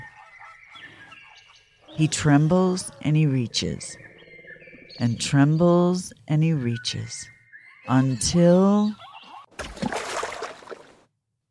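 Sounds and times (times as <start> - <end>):
speech: 2.0 - 4.0, 5.0 - 9.0
giraffe falling into water with a heavy splash: 9.6 - 11.0.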